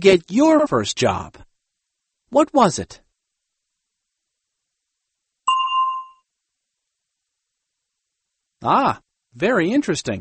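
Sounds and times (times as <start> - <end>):
speech: 0.0 - 1.5, 2.3 - 3.0, 8.6 - 10.1
bright bell ding used as a quiz cue: 5.5 - 6.2.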